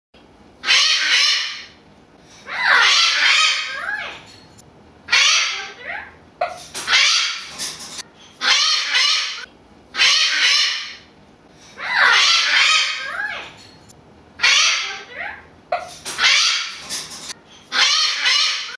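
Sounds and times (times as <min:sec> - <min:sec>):
blue-throated macaw parrot calls: 0:00.6 - 0:01.8, 0:02.4 - 0:04.3, 0:05.1 - 0:07.6, 0:08.3 - 0:11.1, 0:11.7 - 0:13.6, 0:14.4 - 0:18.7.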